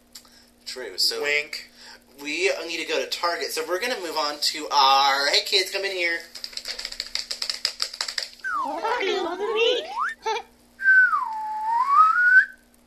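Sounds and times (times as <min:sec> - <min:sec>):
speech: 0:00.7 - 0:06.4
rapid clicking: 0:05.5 - 0:08.4
laughter: 0:08.5 - 0:10.4
child whistling: 0:10.8 - 0:12.6.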